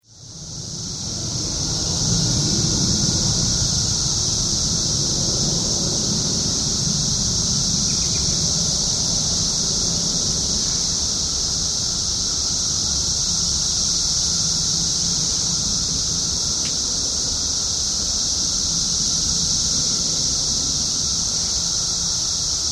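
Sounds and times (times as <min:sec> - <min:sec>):
17-year cicadas of Brood XIII in Glenview Illinois: 0:00.0 - 0:22.6.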